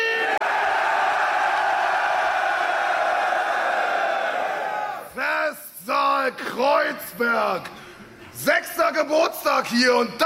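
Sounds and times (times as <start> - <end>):
crowd of 1300 people screaming and roaring: 0.1 - 5.1
speech: 6.4 - 7.8, 8.4 - 10.2.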